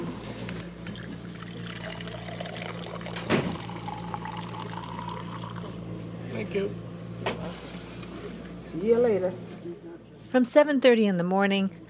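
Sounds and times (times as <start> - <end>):
low constant hum: 0.0 - 11.8
wine brewed on the premises poured into cups: 0.8 - 5.8
speech: 6.4 - 7.3, 8.7 - 11.8.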